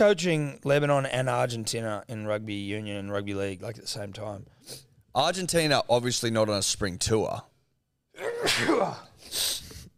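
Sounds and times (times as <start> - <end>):
speech: 0.0 - 7.5, 8.4 - 9.6
person sneezing: 8.2 - 9.6.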